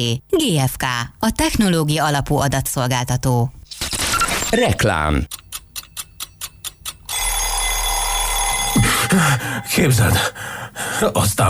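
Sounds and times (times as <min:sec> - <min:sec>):
speech: 0:00.0 - 0:03.9, 0:04.5 - 0:05.4, 0:09.2 - 0:11.4
alarm clock beeping: 0:06.0 - 0:10.6
alarm clock with loud continuous metallic bell ringing: 0:07.1 - 0:10.4.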